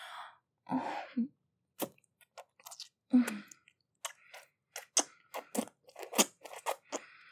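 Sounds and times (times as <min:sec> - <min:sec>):
wet slurping and squelching: 0:01.8 - 0:07.2.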